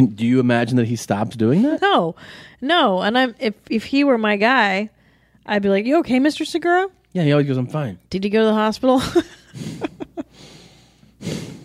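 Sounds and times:
speech: 0:00.0 - 0:09.9
man breathing heavily through nose: 0:09.5 - 0:11.6
snorting sniffs: 0:09.5 - 0:11.6.

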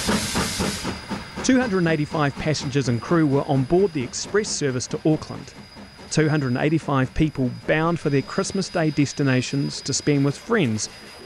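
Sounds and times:
steam locomotive hissing as it pulls away from a station: 0:00.0 - 0:11.2
speech: 0:01.4 - 0:11.2.

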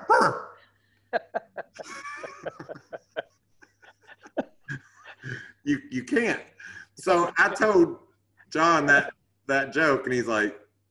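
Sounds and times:
person imitating a dog barking: 0:00.0 - 0:00.6
laughter: 0:01.1 - 0:05.6, 0:07.0 - 0:07.9
speech: 0:05.7 - 0:10.6.

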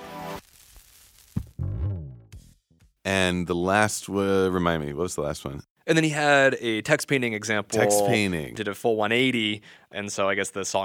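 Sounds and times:
loud harmonic musical passage: 0:00.0 - 0:00.4, 0:01.4 - 0:03.1
vinyl record hiss: 0:00.0 - 0:01.6
speech: 0:03.1 - 0:10.8.

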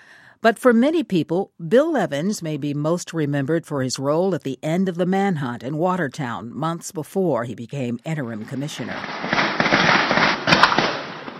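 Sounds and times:
speech: 0:00.4 - 0:09.4
police gunfire from officers of several departments shooting at a boat during a manhunt: 0:08.8 - 0:11.3.

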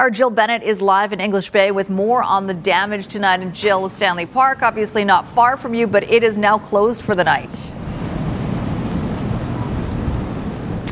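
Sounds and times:
speech: 0:00.0 - 0:07.8
strong windstorm gusts buffeting the microphone at the shoreline: 0:01.5 - 0:10.9
faint surf-like wash at the shoreline: 0:02.6 - 0:10.9.

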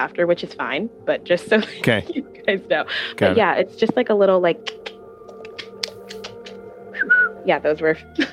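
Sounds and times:
speech: 0:00.0 - 0:04.9, 0:07.4 - 0:08.3
steady low hum: 0:00.0 - 0:08.3
sharp mouth clicks made as a tic: 0:04.7 - 0:06.6.

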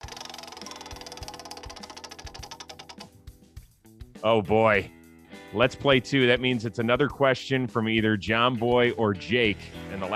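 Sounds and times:
prize wheel spinning and clicking: 0:00.0 - 0:03.2
speech: 0:04.2 - 0:10.1.

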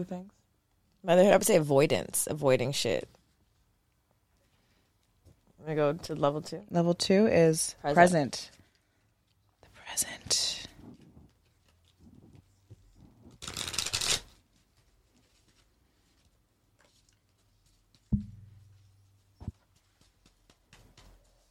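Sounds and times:
speech: 0:00.0 - 0:00.4, 0:01.0 - 0:03.2, 0:05.6 - 0:08.6, 0:10.0 - 0:10.7
deck of ordinary playing cards shuffling: 0:13.0 - 0:14.4
soft knocks: 0:18.1 - 0:18.9.

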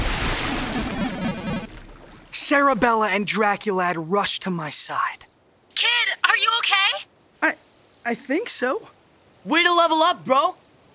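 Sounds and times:
loud splash of a figure falling into a moat: 0:00.0 - 0:02.3
water churning and sloshing in a moat: 0:00.0 - 0:02.9
speech: 0:02.4 - 0:10.6.

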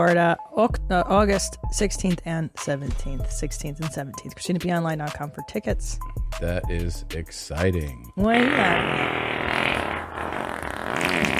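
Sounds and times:
speech: 0:00.0 - 0:09.7
fart: 0:08.2 - 0:11.3.

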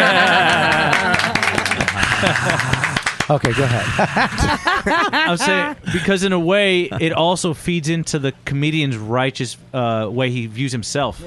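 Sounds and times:
voices or cheering: 0:00.0 - 0:03.9
canned applause from a soundboard button: 0:00.0 - 0:04.0
laughter: 0:00.0 - 0:07.3
speech: 0:03.3 - 0:11.2.

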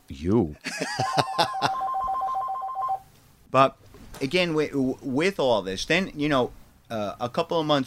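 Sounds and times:
speech: 0:00.1 - 0:01.9, 0:03.5 - 0:07.8
laughter: 0:00.6 - 0:01.9
telephone ringing: 0:00.9 - 0:03.0.

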